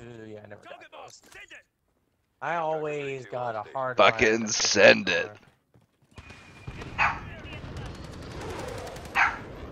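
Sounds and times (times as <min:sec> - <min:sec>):
speech: 0:00.5 - 0:01.7, 0:02.4 - 0:05.5
dog barking sharply: 0:07.0 - 0:07.2, 0:09.2 - 0:09.4.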